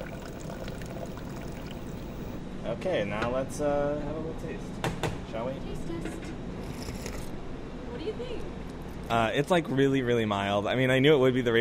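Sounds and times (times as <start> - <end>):
egg coffee pouring through a sieve: 0.0 - 2.3
speech: 2.7 - 6.5, 8.0 - 11.6.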